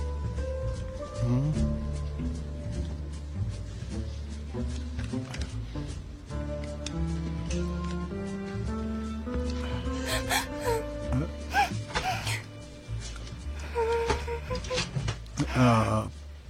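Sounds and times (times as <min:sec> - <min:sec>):
low steady tonal background: 0:00.0 - 0:16.4
person crying with shaky whimpers and wails: 0:10.0 - 0:12.4, 0:13.6 - 0:14.8.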